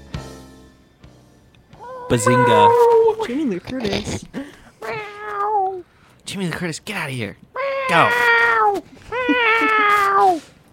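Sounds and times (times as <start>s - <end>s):
cat meowing: 1.8s - 3.2s, 4.8s - 5.8s, 7.6s - 10.5s
speech: 2.1s - 4.5s, 6.3s - 10.5s.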